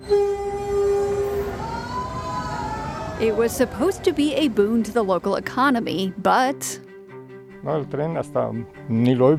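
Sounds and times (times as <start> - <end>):
passenger train horn: 0.0 - 5.0
Maya Train passenger train in Mexico rumbling along rails: 0.0 - 6.7
speech: 3.2 - 6.8, 7.6 - 9.3.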